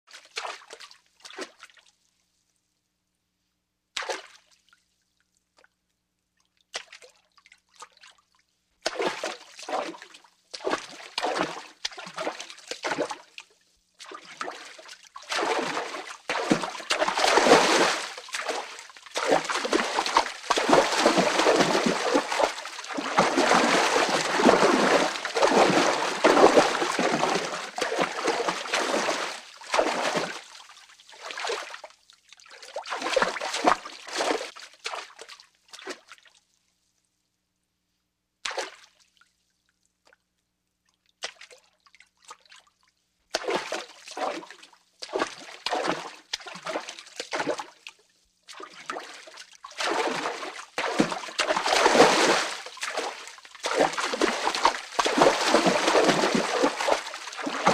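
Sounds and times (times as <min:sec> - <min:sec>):
human footsteps in water: 0:08.8 - 0:13.4, 0:14.0 - 0:31.8, 0:32.5 - 0:36.2, 0:43.3 - 0:57.7.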